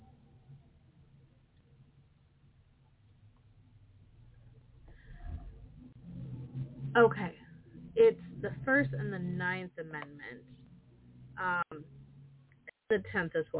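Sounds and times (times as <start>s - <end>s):
road traffic rumble: 4.0s - 12.6s
vehicle passing: 4.2s - 12.6s
speech: 7.0s - 7.4s, 8.4s - 10.6s, 11.4s - 12.0s, 12.9s - 13.5s.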